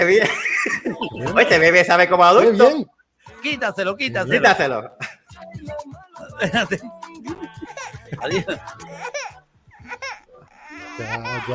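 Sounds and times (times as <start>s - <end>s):
laughter: 0.0s - 2.0s, 6.3s - 9.3s
speech: 0.0s - 5.8s, 6.4s - 9.2s, 11.0s - 11.5s
baby with gas crying: 6.8s - 11.5s.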